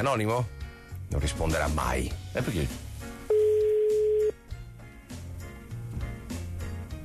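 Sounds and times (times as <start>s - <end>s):
speech: 0.0s - 2.8s
loud steady phone line tone: 3.3s - 4.4s.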